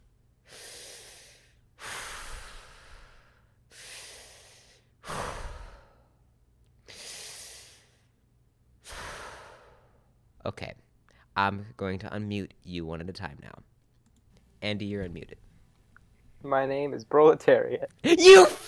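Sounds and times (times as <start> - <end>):
slow deep human breaths: 0.4 - 6.2, 6.8 - 8.2, 8.8 - 10.1
speech: 10.5 - 13.7, 14.6 - 15.4, 16.4 - 18.6.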